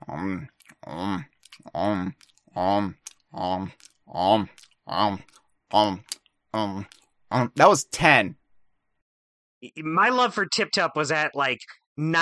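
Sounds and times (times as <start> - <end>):
speech: 0.2 - 3.0, 9.8 - 12.2
person making exaggerated smacking chewing noises: 0.5 - 7.2.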